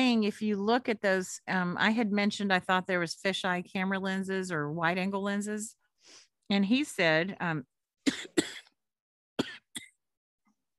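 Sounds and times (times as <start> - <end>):
speech: 0.0 - 8.6
person coughing: 8.1 - 8.8, 9.4 - 10.0.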